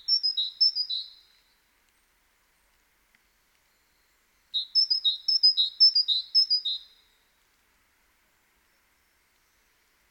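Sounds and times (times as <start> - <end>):
Great tit singing high-low note pairs: 0.0 - 1.1, 4.6 - 6.9.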